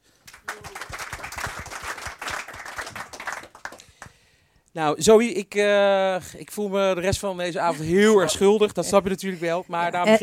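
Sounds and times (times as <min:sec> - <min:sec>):
audience clapping: 0:00.2 - 0:04.3
speech: 0:04.8 - 0:10.2.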